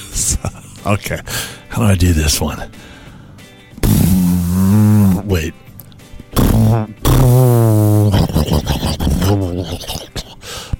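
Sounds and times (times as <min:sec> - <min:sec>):
speech: 0:00.2 - 0:02.9, 0:05.3 - 0:05.6
voice imitating a bubbling jacuzzi: 0:03.8 - 0:05.3, 0:06.4 - 0:10.7.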